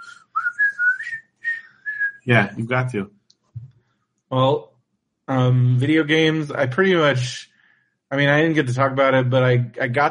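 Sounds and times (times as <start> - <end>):
person whistling a bouncy campground whistle song: 0.0 - 2.5
speech: 2.3 - 3.2, 4.3 - 4.7, 5.3 - 7.5, 8.1 - 10.1.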